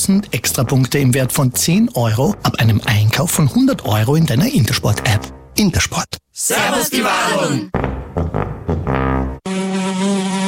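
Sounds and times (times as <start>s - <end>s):
speech: 0.0s - 9.4s
fly buzzing: 9.4s - 10.4s.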